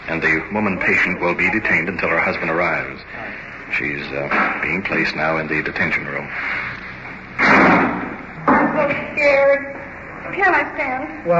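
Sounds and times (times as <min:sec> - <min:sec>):
speech: 0:00.1 - 0:06.7, 0:08.8 - 0:11.3
door slamming shut: 0:07.4 - 0:08.9
heavy bangs: 0:07.4 - 0:09.4.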